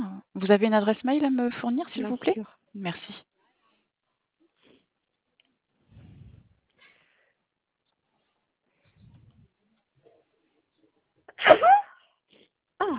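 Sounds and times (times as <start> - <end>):
speech: 0.4 - 3.3
faint low rumbles: 5.8 - 6.7, 8.7 - 9.7
loud sneeze: 11.3 - 12.0.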